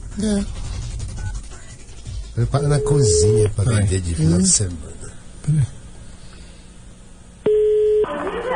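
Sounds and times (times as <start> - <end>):
speech: 0.2 - 0.7, 2.4 - 5.8
telephone electronic beep after receiver lifted: 2.8 - 3.5, 7.5 - 8.1.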